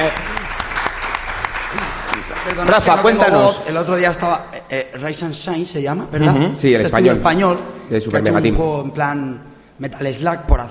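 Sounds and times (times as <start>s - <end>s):
crowd applauding: 0.0s - 3.7s
speech: 2.6s - 10.6s.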